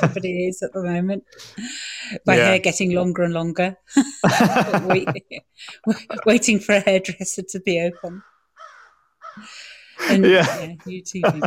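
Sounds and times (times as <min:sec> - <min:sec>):
laughter: 0:00.0 - 0:00.4, 0:04.0 - 0:06.6, 0:10.0 - 0:11.4
speech: 0:00.0 - 0:08.3, 0:09.4 - 0:11.4
crow cawing sound effect: 0:08.0 - 0:09.6.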